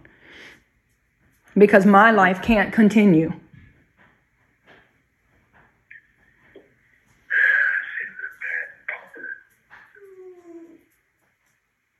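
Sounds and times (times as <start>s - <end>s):
speech: 1.6s - 3.4s
dogs whimpering and whining: 9.7s - 11.1s.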